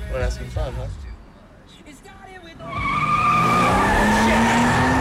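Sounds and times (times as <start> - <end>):
speech: 0.2 - 1.0
car engine revving and accelerating hard: 2.5 - 4.9
car tires screeching: 2.5 - 4.9.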